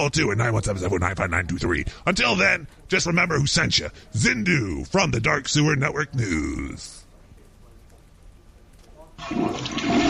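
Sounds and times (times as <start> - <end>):
speech: 0.0 - 7.0, 9.2 - 10.0
toilet flushing with swirling water: 9.2 - 10.0.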